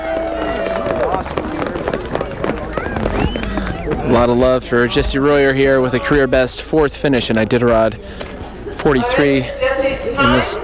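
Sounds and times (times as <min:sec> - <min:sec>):
outdoor crowd cheering and shouting encouragement at finish line: 0:00.0 - 0:05.7
speech: 0:04.2 - 0:10.6.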